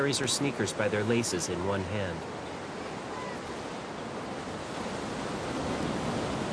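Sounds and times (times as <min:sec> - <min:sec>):
speech: 0:00.0 - 0:02.4
ocean waves breaking on beach shore: 0:00.0 - 0:06.5.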